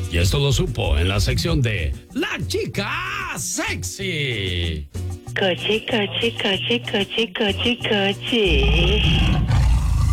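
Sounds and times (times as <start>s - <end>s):
speech: 0.1s - 9.4s
tiger roar sound effect: 8.6s - 10.1s.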